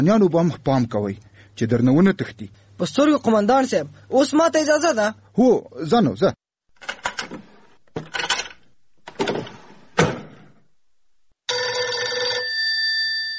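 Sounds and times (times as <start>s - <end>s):
speech: 0.0s - 8.1s
door-like bangs and clatters: 9.1s - 10.6s
telephone ringing: 11.5s - 13.3s.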